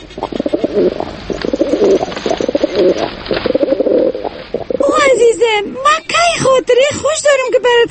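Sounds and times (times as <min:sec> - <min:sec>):
pigeon cooing: 0:00.0 - 0:05.5
speech: 0:00.2 - 0:01.2, 0:05.3 - 0:07.9.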